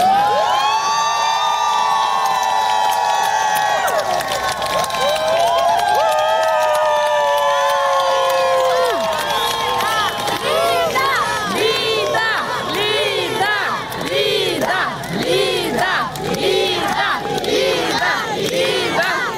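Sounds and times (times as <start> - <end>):
large crowd shouting support outdoors outside a courthouse: 0.0 - 19.3
crowd chanting rhythmically in unison outside a courthouse: 9.7 - 19.3.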